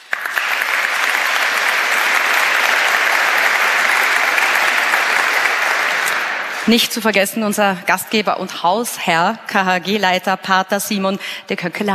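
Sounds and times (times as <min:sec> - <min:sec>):
audience applause: 0:00.0 - 0:06.7
speech: 0:06.7 - 0:11.9.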